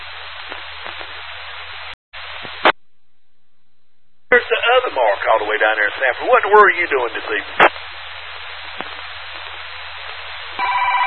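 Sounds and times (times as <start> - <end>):
radio static hiss: 0.0 - 2.8, 4.3 - 11.0
speech: 4.4 - 7.7
telephone ringing with a pulsing electronic tone: 10.6 - 11.0.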